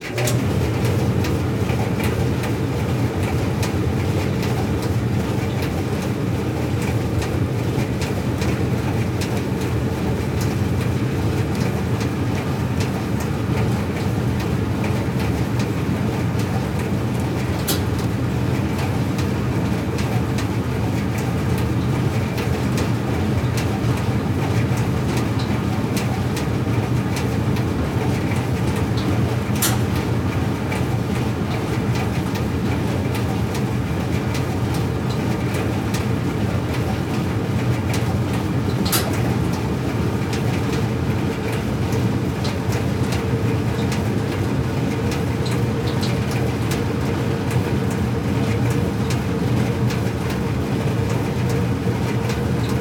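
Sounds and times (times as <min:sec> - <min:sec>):
dryer running: 0:00.0 - 0:52.7.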